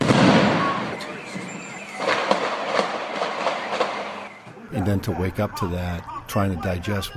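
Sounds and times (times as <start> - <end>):
gunfire fired at police officers: 0.0 - 4.5
thrown bombs exploding: 0.0 - 4.5
steady noise: 0.0 - 7.1
laughter: 4.4 - 7.1
speech: 4.8 - 7.1.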